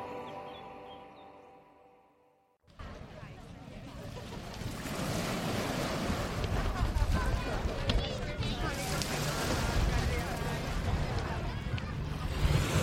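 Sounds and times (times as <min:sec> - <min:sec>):
waves breaking on the shore at Broadstairs in Kent: 0:03.8 - 0:12.8
gusty wind rumbling across the microphone: 0:05.6 - 0:12.8.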